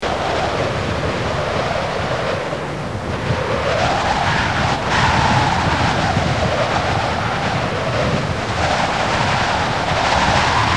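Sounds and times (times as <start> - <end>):
storm: 0.0 - 10.7.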